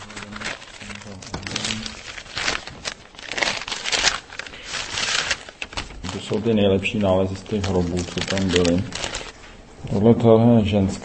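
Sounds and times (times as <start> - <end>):
plastic bags rustling and crinkling as items are pulled out: 0.0 - 10.0
speech: 6.3 - 9.1, 9.9 - 11.0.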